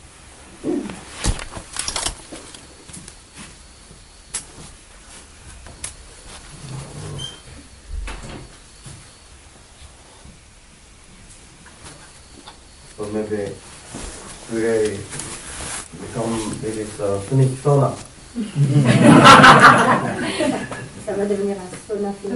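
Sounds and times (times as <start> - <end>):
room shuffling: 0.2 - 22.3
door pushed shut: 7.9 - 8.5
speech: 13.1 - 13.7, 14.5 - 15.2, 16.2 - 20.6, 21.2 - 22.3
laughter: 18.4 - 21.0.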